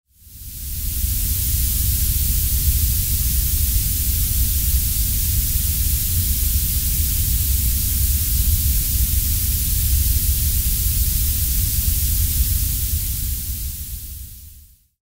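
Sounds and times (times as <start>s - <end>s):
orange purple noise: 0.1s - 15.0s.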